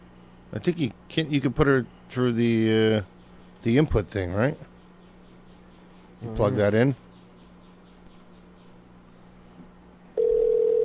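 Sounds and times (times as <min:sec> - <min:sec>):
faint low hum: 0:00.0 - 0:10.8
speech: 0:00.5 - 0:04.7, 0:06.2 - 0:07.0
steady electronic telephone tone from a phone call: 0:10.2 - 0:10.8.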